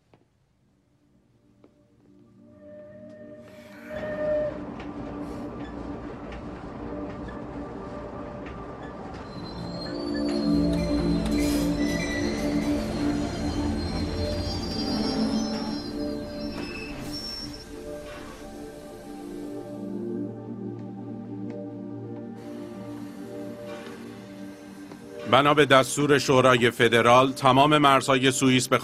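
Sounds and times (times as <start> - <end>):
passenger train rolling along the rails: 3.0 - 28.0
speech: 25.3 - 28.8.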